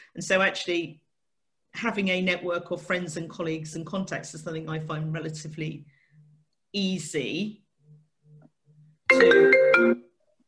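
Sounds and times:
speech: 0.1s - 1.0s, 1.8s - 6.0s, 6.7s - 7.6s, 9.2s - 10.0s
mobile phone ringtone: 9.1s - 10.1s.

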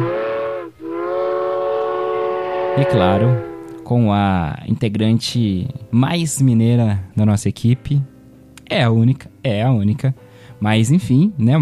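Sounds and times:
train whistle: 0.0s - 3.9s
speech: 2.8s - 8.1s, 8.7s - 11.5s.

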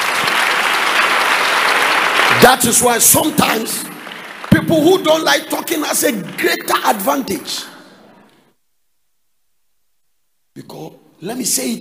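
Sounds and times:
audience applause: 0.0s - 8.4s
speech: 2.4s - 4.0s, 4.6s - 7.7s, 10.6s - 11.7s.

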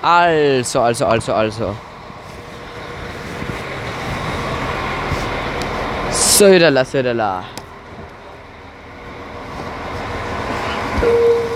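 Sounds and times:
speech: 0.0s - 1.9s, 6.4s - 7.6s, 11.0s - 11.3s
train drawing closer to station rumbling: 0.0s - 11.5s
brief high squeal: 10.7s - 11.5s.

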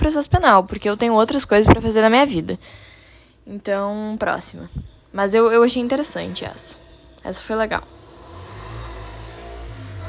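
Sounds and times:
speech: 0.0s - 2.9s, 3.5s - 8.0s
motorcycle engine droning past on the street: 7.8s - 10.0s.

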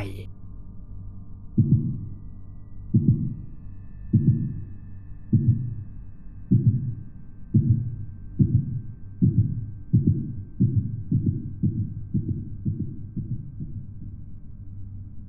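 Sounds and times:
deep continuous hum: 0.0s - 15.2s
loud low heartbeat thumps: 1.6s - 2.0s, 3.0s - 3.4s, 4.1s - 4.6s, 5.3s - 5.8s, 6.5s - 14.0s.

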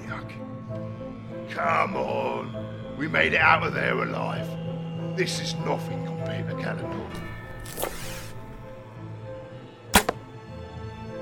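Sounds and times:
speech: 1.5s - 4.6s, 5.2s - 8.0s
arrow whooshing release: 7.6s - 8.7s, 10.0s - 10.3s.

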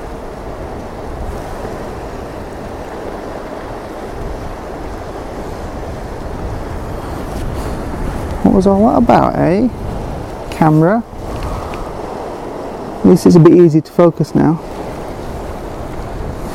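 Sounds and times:
gusty wind: 0.0s - 16.5s
ocean surf: 0.0s - 16.5s
speech: 8.4s - 9.9s, 10.6s - 11.2s, 13.1s - 14.7s.

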